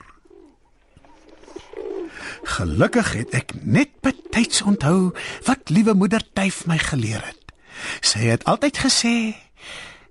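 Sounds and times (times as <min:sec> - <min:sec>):
small dove cooing high up in a tree: 0:00.0 - 0:05.8
light hiss: 0:00.0 - 0:10.0
speech: 0:02.4 - 0:09.9.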